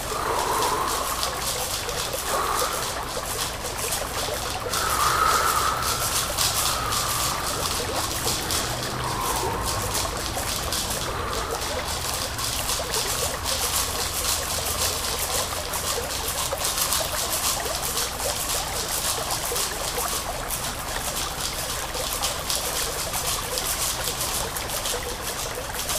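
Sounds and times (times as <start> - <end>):
soft mid-pitched sustained tone: 0.0 - 12.0
trickling water: 0.0 - 25.9.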